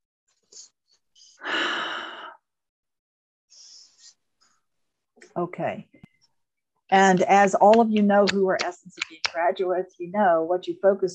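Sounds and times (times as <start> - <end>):
person taking a deep breath during a guided group breathing exercise: 1.3 - 2.5
speech: 5.4 - 6.1, 6.9 - 11.1.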